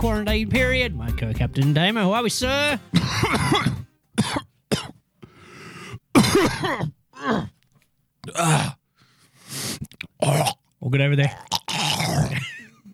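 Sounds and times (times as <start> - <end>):
speech: 0.0 - 3.8, 6.4 - 7.5, 8.4 - 8.8, 10.8 - 11.6
person clearing throat of phlegm: 2.9 - 5.0, 6.2 - 7.6, 11.5 - 12.8
person coughing up phlegm: 2.9 - 5.0, 6.2 - 7.5.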